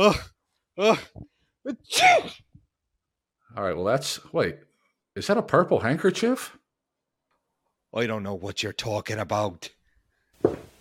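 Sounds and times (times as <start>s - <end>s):
speech: 0.0s - 2.4s, 3.6s - 6.6s, 7.9s - 9.8s, 10.4s - 10.7s
person sneezing: 0.0s - 2.5s.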